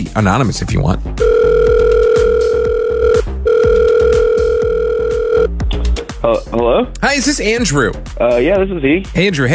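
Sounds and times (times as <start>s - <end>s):
speech: 0.1s - 1.4s, 6.2s - 9.5s
repetitive rhythmic backing pulse: 1.1s - 6.2s
telephone ringback tones on an outgoing call: 1.2s - 5.5s.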